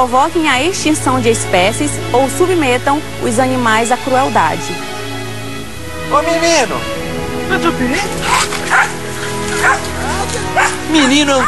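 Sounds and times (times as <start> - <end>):
speech: 0.0 - 4.9, 6.1 - 9.0, 9.6 - 11.4
dog barking: 8.2 - 11.4.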